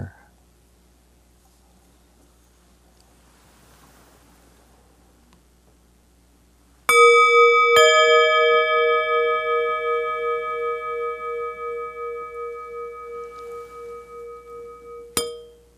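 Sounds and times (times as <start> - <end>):
bell ringing with a long shimmering tone: 6.9 - 15.6.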